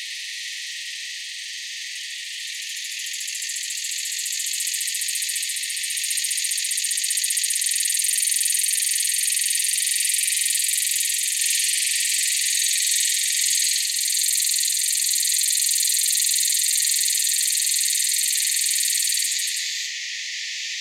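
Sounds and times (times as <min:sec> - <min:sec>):
Neotibicen similaris similaris cicadas in Florida US: 0:00.0 - 0:20.8.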